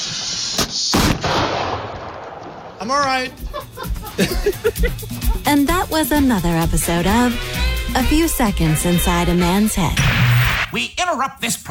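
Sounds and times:
fireworks lit with a lighter going off: 0:00.0 - 0:03.7
speech: 0:02.8 - 0:11.7
laughter: 0:03.3 - 0:06.7.

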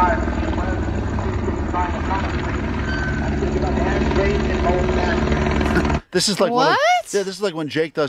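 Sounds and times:
police helicopter rotor: 0:00.0 - 0:06.1
speech: 0:06.1 - 0:08.0.

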